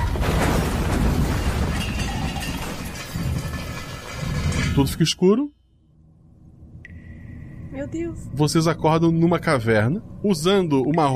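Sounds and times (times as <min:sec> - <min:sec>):
glass shattering in a car crash: 0:00.0 - 0:04.9
car crash during an earthquake: 0:00.0 - 0:05.1
debris crunching and rumbling during an earthquake: 0:00.0 - 0:05.2
speech: 0:04.8 - 0:05.6, 0:07.8 - 0:11.1.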